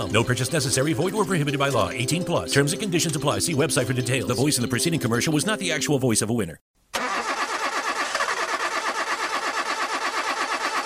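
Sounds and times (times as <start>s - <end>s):
speech: 0.0s - 6.8s
car engine cranking and starting: 6.9s - 10.8s.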